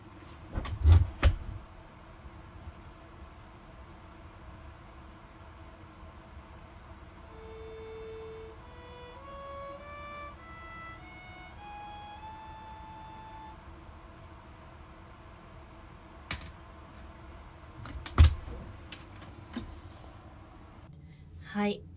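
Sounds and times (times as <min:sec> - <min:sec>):
steady low hum: 0:00.0 - 0:21.9
door being shut: 0:00.5 - 0:01.6, 0:17.8 - 0:19.9
speech: 0:21.5 - 0:21.9.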